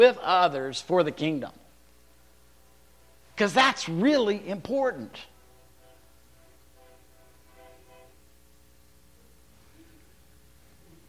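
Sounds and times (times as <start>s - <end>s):
speech: 0.0s - 1.6s, 3.4s - 5.3s
train horn blaring: 5.5s - 8.2s.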